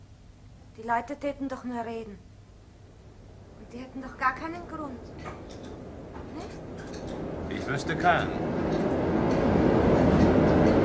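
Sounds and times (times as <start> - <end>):
speech: 0.8 - 2.3, 3.7 - 5.8, 6.4 - 10.0
express train running slowly, rumbling and rattling: 6.2 - 10.8.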